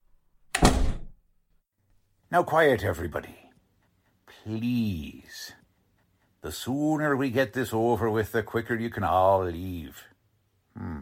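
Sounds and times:
door slamming shut and rattling: 0.5 - 1.2
speech: 2.3 - 3.4, 4.4 - 5.6, 6.4 - 10.1, 10.8 - 11.0.

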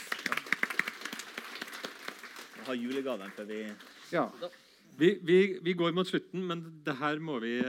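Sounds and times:
small audience applauding: 0.0 - 4.2
speech: 2.7 - 7.6.

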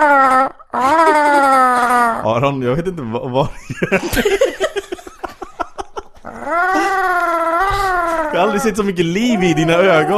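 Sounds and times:
person imitating dolphin calls with voice: 0.0 - 2.3, 6.3 - 10.1
speech: 2.2 - 4.9, 8.3 - 10.1
laughter: 3.4 - 7.1.

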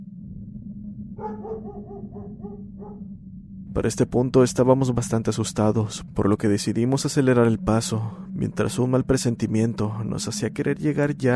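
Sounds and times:
steady low rumble: 0.0 - 11.3
dog barking while running away chasing something: 1.2 - 3.1
speech: 1.2 - 11.3.

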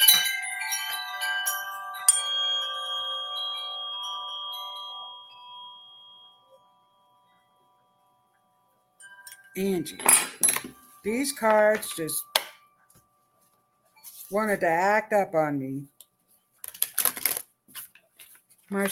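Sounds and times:
bell struck with a bright metallic tone: 0.0 - 14.3
speech: 9.6 - 12.3, 14.3 - 15.9.

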